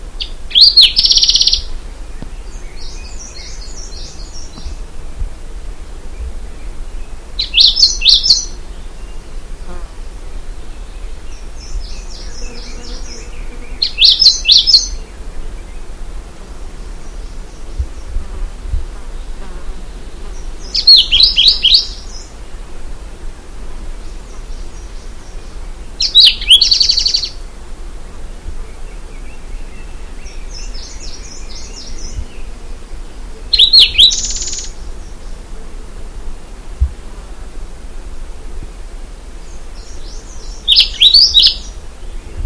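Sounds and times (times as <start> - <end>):
Grey-crowned Warbler Seicercus tephrocephalus singing in Hunan China: 0.2 - 4.9, 6.1 - 9.9, 10.5 - 16.0, 19.1 - 22.4, 24.0 - 27.4, 28.6 - 35.5, 39.4 - 42.4.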